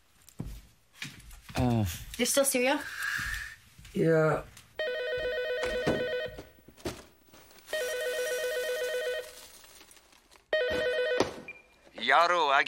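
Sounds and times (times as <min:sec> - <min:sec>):
speech: 0:01.6 - 0:03.0, 0:03.9 - 0:04.6, 0:12.1 - 0:12.6
telephone ringing with electronic trilling: 0:04.8 - 0:06.6, 0:07.7 - 0:09.4, 0:10.5 - 0:11.7.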